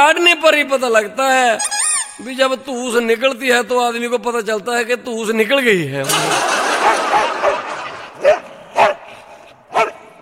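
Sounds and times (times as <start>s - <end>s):
speech: 0.1s - 7.4s
laughter: 6.0s - 8.5s
dog barking: 6.8s - 9.1s, 9.7s - 10.2s.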